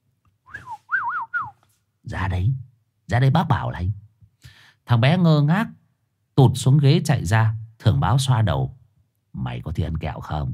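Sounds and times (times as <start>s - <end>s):
man whistling melodic phrases: 0.5s - 1.6s
speech: 2.1s - 4.0s, 4.9s - 5.8s, 6.4s - 8.8s, 9.4s - 10.5s.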